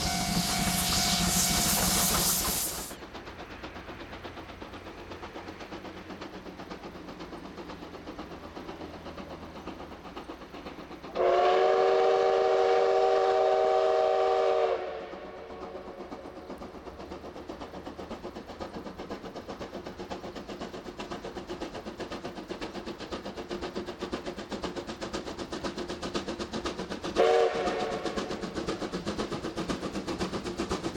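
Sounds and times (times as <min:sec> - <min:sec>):
steam locomotive whistle: 0:00.0 - 0:02.9, 0:11.2 - 0:15.9, 0:27.2 - 0:28.3
steam locomotive hauling a train rumbling: 0:00.0 - 0:30.9
steam locomotive hissing steam: 0:00.0 - 0:30.9.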